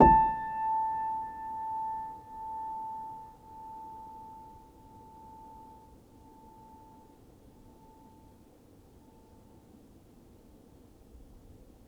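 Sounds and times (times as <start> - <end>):
upright piano: 0.0 - 4.6.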